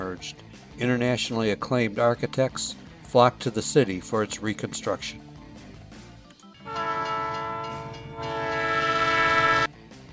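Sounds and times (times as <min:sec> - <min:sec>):
speech: 0:00.2 - 0:05.2
passenger train horn blasts: 0:06.6 - 0:09.7
rumble and clatter of rail cars getting under way: 0:06.6 - 0:09.7.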